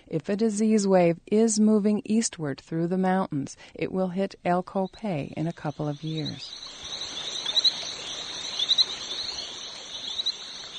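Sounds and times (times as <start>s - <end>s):
speech: 0.1s - 6.9s
insects humming in mountain rainforest: 4.8s - 10.7s
small brown frogs with racing stripes chirping in mountain rainforest: 4.8s - 10.7s
dripping mountain rainforest ambience: 5.5s - 10.7s.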